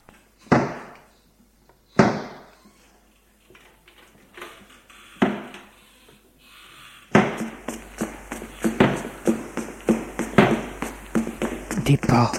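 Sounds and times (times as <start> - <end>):
doors slamming in a reverberant space: 4.4 - 5.7, 7.1 - 11.8
rapid flurry of heavy bangs: 7.1 - 12.3
speech: 11.9 - 12.3.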